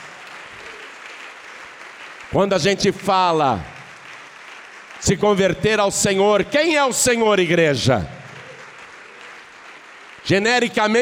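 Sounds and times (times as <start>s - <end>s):
audience applauding: 0.0s - 11.0s
speech: 2.3s - 3.7s, 5.0s - 8.2s, 10.3s - 11.0s.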